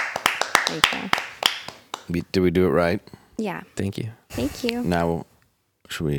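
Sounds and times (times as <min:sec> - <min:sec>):
sharp hand claps in a small room: 0:00.0 - 0:02.2
speech: 0:00.7 - 0:01.3, 0:02.1 - 0:05.3, 0:05.9 - 0:06.1.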